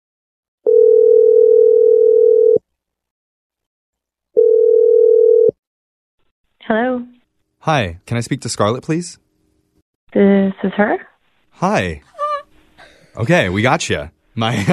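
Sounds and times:
telephone dial tone: 0.7s - 2.6s, 4.4s - 5.6s
speech: 6.7s - 7.1s, 7.7s - 9.3s, 10.1s - 12.1s, 13.2s - 14.7s.

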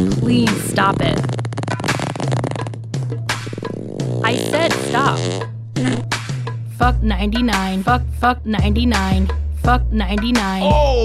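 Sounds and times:
fart sound effect: 0.0s - 6.4s
speech: 0.3s - 1.3s, 4.6s - 5.5s, 6.9s - 11.0s.

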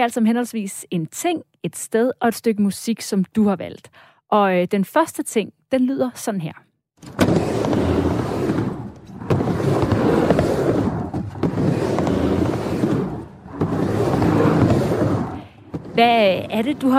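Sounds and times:
speech: 0.0s - 7.2s, 16.0s - 16.9s
skateboard wheels rolling on pavement: 7.0s - 16.9s.

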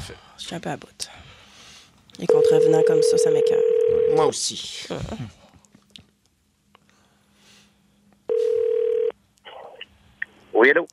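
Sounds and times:
speech: 0.1s - 1.3s, 2.2s - 5.4s, 10.6s - 10.9s
outgoing telephone call ringback tone: 2.3s - 4.2s, 8.3s - 9.1s.

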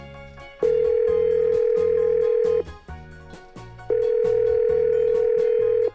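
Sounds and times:
soft music: 0.0s - 5.9s
outgoing call ringback tone: 0.6s - 2.7s, 3.9s - 5.9s.

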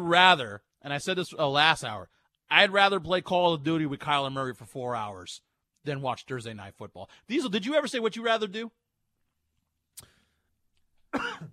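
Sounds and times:
speech: 0.1s - 8.8s
faint breathing: 10.0s - 10.6s
person coughing: 11.1s - 11.5s.

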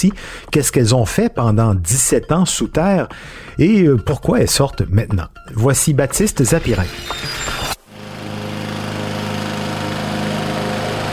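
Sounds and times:
speech: 0.0s - 7.6s
lawn mower engine running: 6.8s - 11.1s.

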